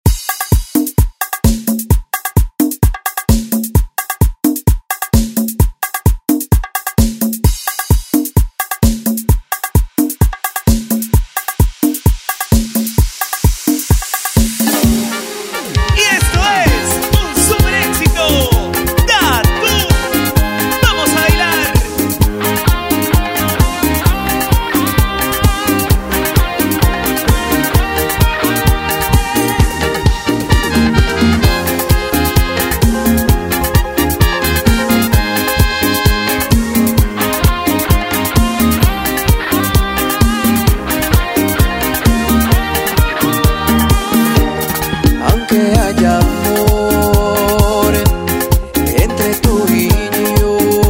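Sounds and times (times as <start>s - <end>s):
tropical pop music: 0.1s - 50.8s.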